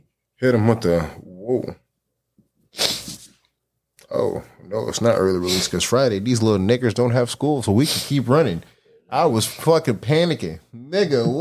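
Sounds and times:
speech: 0.4 - 1.8, 4.1 - 11.3
person sneezing: 2.7 - 3.4.

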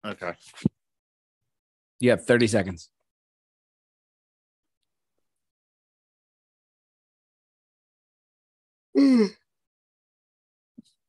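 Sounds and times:
speech: 0.1 - 0.8, 2.0 - 3.0
person yawning: 9.0 - 9.4.

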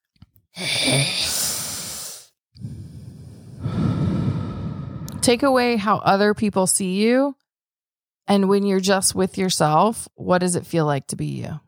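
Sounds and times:
speech: 0.6 - 1.3, 5.2 - 7.4, 8.3 - 11.6
person drawing a long deep breath in: 0.6 - 5.3.

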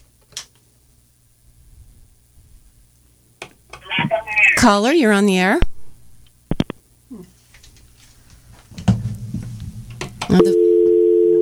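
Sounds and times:
speech: 4.6 - 5.7, 10.3 - 10.6
low hum on a caller's phone line: 10.3 - 11.4.

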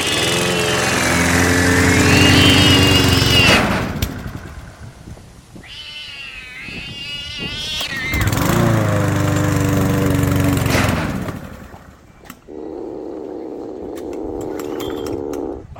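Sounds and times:
lawn mower engine running: 0.0 - 5.1, 7.8 - 12.1.

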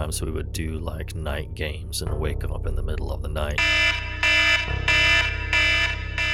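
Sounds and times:
speech: 0.0 - 5.3
loud electronic siren-like alarm blaring at night: 3.6 - 6.3.

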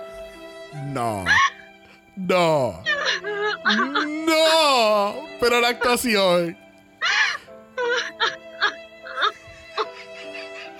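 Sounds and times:
speech: 0.7 - 1.5, 2.2 - 6.6
woman crying and wailing: 2.3 - 6.0, 7.0 - 10.7.

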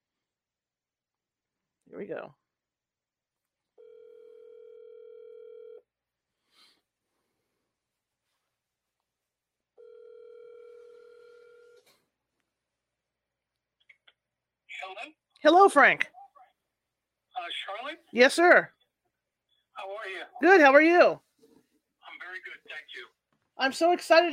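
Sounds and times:
speech: 1.9 - 2.4, 14.9 - 16.1, 17.5 - 18.8, 19.8 - 21.2, 22.4 - 24.3
telephone line tones while a call is being placed: 3.8 - 5.8, 9.8 - 11.8.

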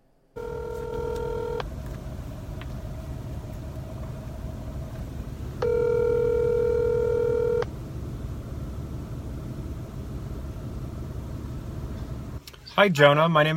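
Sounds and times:
constant low rumble: 0.0 - 13.5
telephone dialing tones before a call: 0.4 - 1.6, 5.6 - 7.7
speech: 12.8 - 13.5.

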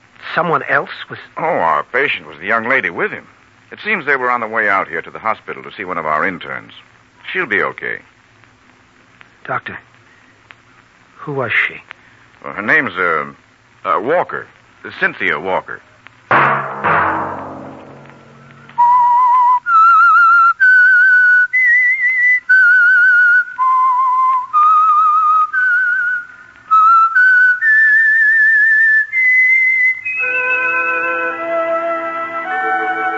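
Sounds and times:
speech: 0.4 - 8.1, 9.5 - 9.9, 11.2 - 15.9
whistled theme melody signalling a radio program: 18.6 - 33.1.

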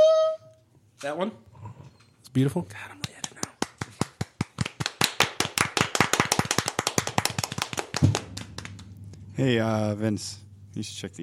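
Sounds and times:
speech: 1.0 - 3.0, 9.4 - 11.2
small group of people clapping: 3.0 - 9.0.

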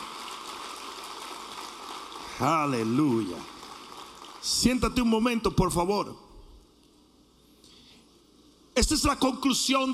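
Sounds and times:
large crowd of worshippers applauding at a religious service: 0.0 - 4.9
speech: 2.4 - 3.5, 4.4 - 6.2, 8.8 - 9.9.

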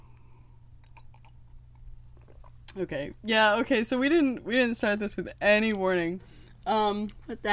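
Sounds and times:
person gulping wine: 0.1 - 2.7
speech: 2.8 - 7.5.

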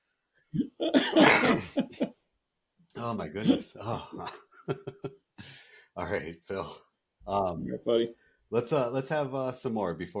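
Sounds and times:
person getting over a sickness coughing: 0.6 - 2.1
speech: 3.0 - 5.2, 6.0 - 10.1.

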